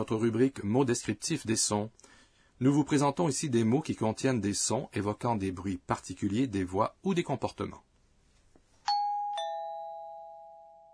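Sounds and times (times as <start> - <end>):
speech: 0.0 - 7.9
two-note doorbell chime: 8.9 - 10.9.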